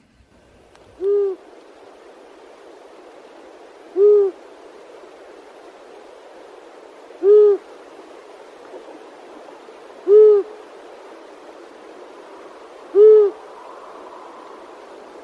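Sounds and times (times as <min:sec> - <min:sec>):
hiss: 0:00.0 - 0:15.2
long-eared owl hooting: 0:00.9 - 0:01.6, 0:03.7 - 0:04.6, 0:07.1 - 0:08.1, 0:10.0 - 0:10.8, 0:12.4 - 0:14.9.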